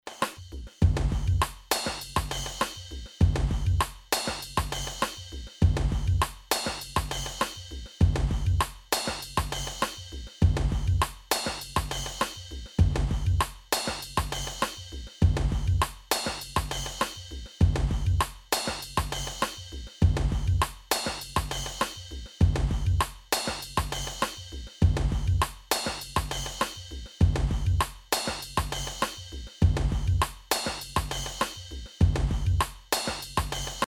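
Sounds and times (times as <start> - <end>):
dub drum kit: 0.1 - 33.8.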